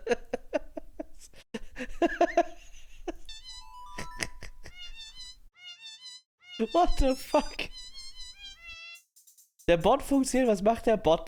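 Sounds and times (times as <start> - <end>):
speech: 2.0 - 2.4, 6.6 - 7.8, 9.7 - 11.2
cat meows pitched and edited into a tune: 3.3 - 4.0, 4.7 - 9.0
higher synth-like tones: 3.4 - 9.0.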